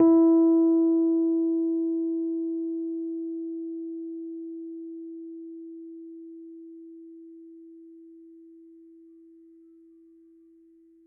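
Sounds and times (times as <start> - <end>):
Rhodes Mark II electric piano note: 0.0 - 6.4.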